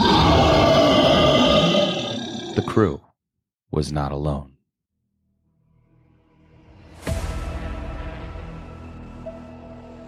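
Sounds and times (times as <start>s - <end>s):
deep rough creature roar in a dark warehouse: 0.0s - 3.0s
speech: 2.6s - 3.1s, 3.7s - 4.5s.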